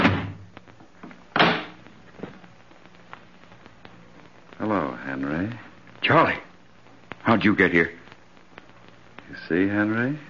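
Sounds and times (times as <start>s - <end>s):
door thudding open: 0.0s - 0.4s, 1.4s - 1.8s
speech: 5.2s - 6.5s, 7.2s - 8.0s, 9.5s - 10.2s.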